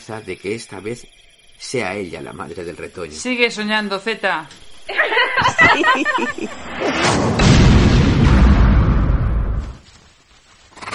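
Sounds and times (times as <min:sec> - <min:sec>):
speech: 0:00.0 - 0:07.4
laughter: 0:04.9 - 0:06.9
loud deep explosion booming and rumbling: 0:06.6 - 0:09.8.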